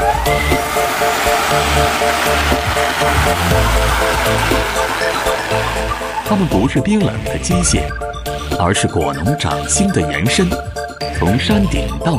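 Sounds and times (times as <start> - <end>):
delivery drone flying: 0.0 - 9.0
speech: 1.5 - 5.0, 5.8 - 12.1.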